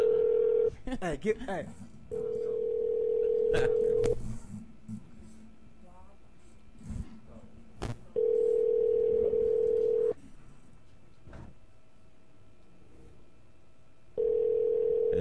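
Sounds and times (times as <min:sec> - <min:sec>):
telephone ringback tone heard over a line: 0:00.0 - 0:00.7, 0:02.2 - 0:04.2, 0:08.2 - 0:10.1, 0:14.2 - 0:15.1.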